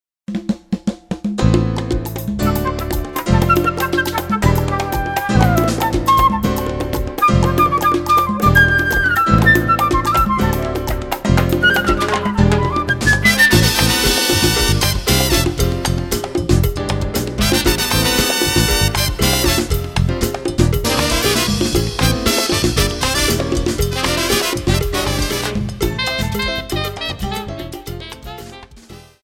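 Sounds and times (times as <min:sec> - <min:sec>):
latin jazz music: 0:00.3 - 0:29.2.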